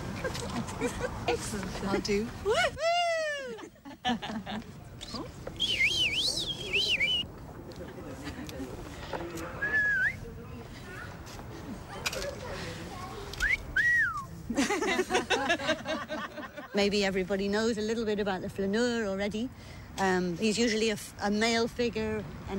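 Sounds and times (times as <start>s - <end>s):
laughter: 0.0s - 1.4s, 2.4s - 4.8s, 7.8s - 9.0s, 14.5s - 16.8s
lively crowd murmur and chatter: 0.0s - 18.4s
speech: 0.3s - 2.9s, 4.1s - 5.8s, 16.8s - 22.5s
several people whistling playfully: 5.6s - 7.2s, 9.6s - 10.2s, 13.4s - 14.3s.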